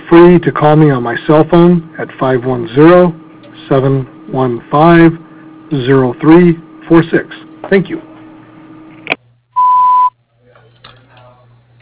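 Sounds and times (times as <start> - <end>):
speech: 0.1 - 8.1
answering-machine voicemail beep: 9.6 - 10.1.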